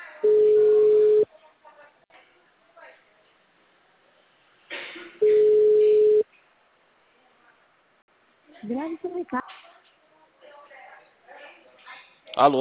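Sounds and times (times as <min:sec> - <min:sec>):
ringback tones of an unanswered telephone call: 0:00.2 - 0:01.3, 0:05.2 - 0:06.2
speech: 0:08.8 - 0:09.6, 0:12.4 - 0:12.5.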